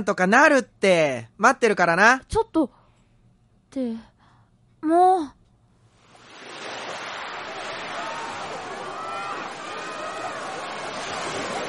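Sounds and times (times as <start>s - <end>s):
speech: 0.0s - 2.8s, 3.7s - 4.1s, 4.8s - 5.4s
ocean surf at the sea: 6.0s - 11.6s.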